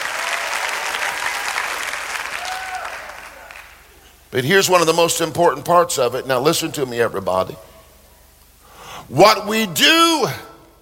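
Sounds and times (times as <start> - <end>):
church congregation applauding and cheering: 0.0 - 4.0
speech: 4.3 - 7.7, 9.1 - 10.5.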